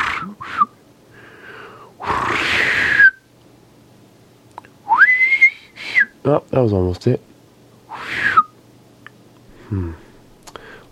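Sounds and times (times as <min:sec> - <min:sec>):
person whistling an imitation of a sparrow call: 0:00.1 - 0:00.8, 0:02.4 - 0:03.2, 0:04.9 - 0:06.2, 0:07.9 - 0:08.6
speech: 0:06.2 - 0:07.3, 0:09.7 - 0:10.0.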